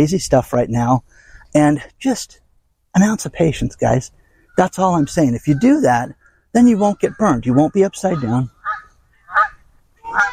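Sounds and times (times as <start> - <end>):
speech: 0.0 - 8.6
loud brassy geese honking: 5.4 - 10.3.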